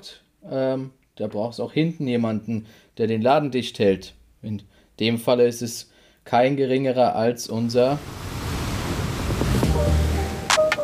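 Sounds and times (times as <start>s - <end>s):
speech: 0.0s - 8.3s
ocean surf waves rolling and breaking: 8.0s - 10.8s.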